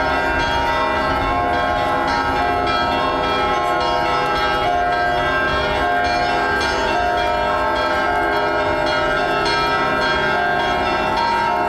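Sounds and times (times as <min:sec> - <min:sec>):
several church bells pealing together: 0:00.0 - 0:11.6.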